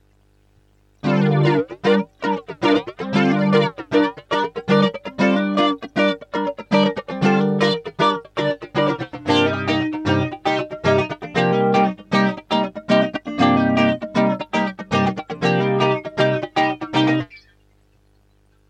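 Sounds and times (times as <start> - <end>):
funky chops with flange effect: 1.0 - 17.3.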